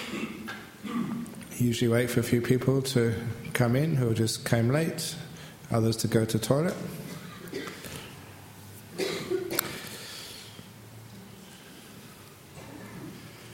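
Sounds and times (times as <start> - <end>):
people coughing in an audience: 0.0 - 1.4, 7.0 - 8.2, 9.0 - 9.9, 12.6 - 13.4
speech: 1.6 - 7.0.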